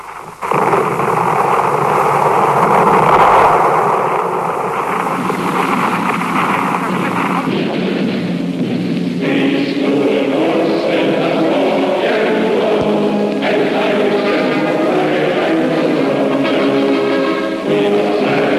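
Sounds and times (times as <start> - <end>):
windy sea-like wash: 0.0 - 8.3
battleship naval gunfire shelling: 0.0 - 18.5.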